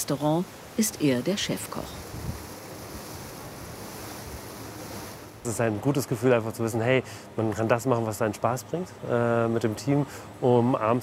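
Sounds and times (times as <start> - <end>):
speech: 0.0 - 2.1, 5.4 - 11.0
wind and waves aboard a ferry crossing the Kiel Förde: 0.0 - 6.7.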